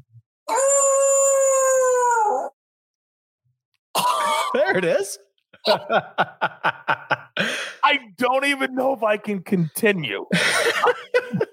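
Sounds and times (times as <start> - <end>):
dog howling: 0.5 - 2.6
laughter: 4.2 - 8.0, 10.3 - 11.5
speech: 4.6 - 11.4.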